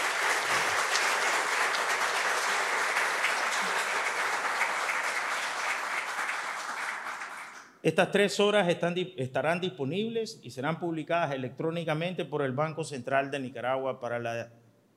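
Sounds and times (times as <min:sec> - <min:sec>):
sustained applause from a sizable audience: 0:00.0 - 0:07.7
speech: 0:07.8 - 0:14.6.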